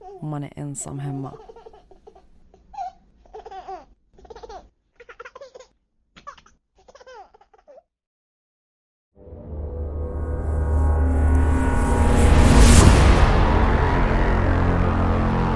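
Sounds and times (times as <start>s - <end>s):
speech: 0.2s - 1.5s
baby laughing and squealing: 1.4s - 7.8s
rush of noise: 9.5s - 15.5s.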